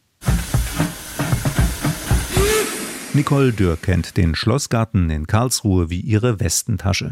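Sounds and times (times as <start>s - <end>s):
small park railway steam train in the Schlossgarten in Karlsruhe hissing: 0.0s - 4.6s
small park railway steam train chuffing: 0.2s - 4.3s
speech: 3.2s - 7.1s.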